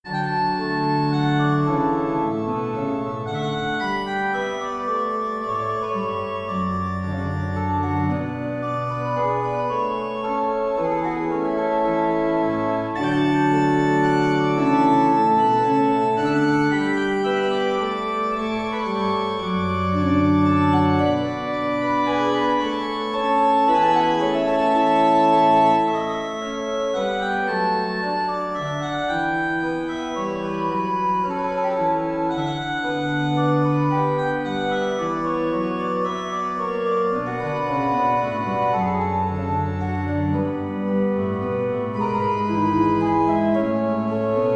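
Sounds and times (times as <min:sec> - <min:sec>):
organ minuet in D major: 0:00.0 - 0:44.5.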